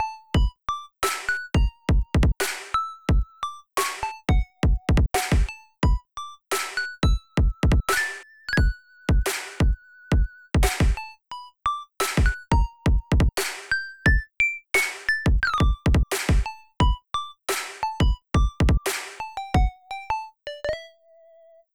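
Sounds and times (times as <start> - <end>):
future bass kick drum in mixdown: 0.4 - 0.6, 1.6 - 2.4, 3.1 - 3.3, 4.3 - 6.0, 7.0 - 7.9, 8.6 - 11.0, 12.2 - 13.4, 14.1 - 14.3, 15.3 - 17.0, 18.0 - 18.9, 19.6 - 19.8
future bass snare drum in mixdown: 1.0 - 1.4, 2.2 - 2.8, 3.8 - 4.0, 5.0 - 5.5, 6.5 - 6.9, 9.2 - 9.7, 10.6 - 11.0, 12.0 - 13.7, 14.8 - 16.5, 17.5 - 19.2.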